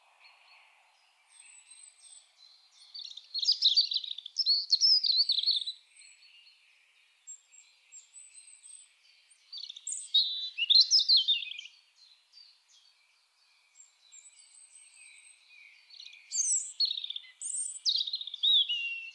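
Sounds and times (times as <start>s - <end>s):
European robin singing Erithacus rubecula: 0.3s - 5.8s, 9.4s - 11.8s, 13.6s - 19.1s.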